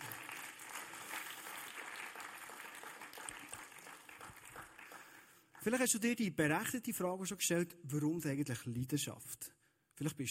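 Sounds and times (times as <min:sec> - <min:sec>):
crowd applauding: 0:00.0 - 0:05.8
speech: 0:05.6 - 0:10.2.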